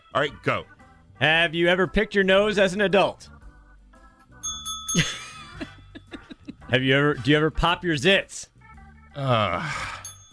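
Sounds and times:
speech: 0:00.1 - 0:03.3, 0:04.9 - 0:05.2, 0:06.7 - 0:08.5, 0:09.2 - 0:10.0
hand bell rung as a signal during a confession game: 0:04.4 - 0:05.6, 0:10.0 - 0:10.3
laughter: 0:05.0 - 0:06.7.

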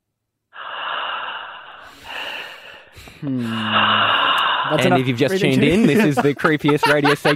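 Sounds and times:
caller breathing heavily into a phone line: 0:00.6 - 0:04.8
speech: 0:03.2 - 0:07.3
laughter: 0:04.8 - 0:07.3.

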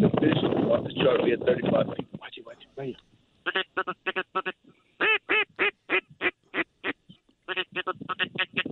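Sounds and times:
speech: 0:00.2 - 0:03.1
wigeon duck quacking while landing near decoys: 0:03.4 - 0:08.7.

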